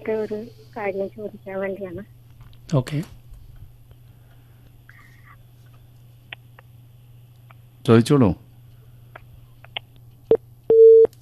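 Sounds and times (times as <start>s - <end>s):
speech: 0.0s - 3.2s, 7.9s - 8.4s
telephone tones after a phone call cuts off: 10.7s - 11.1s.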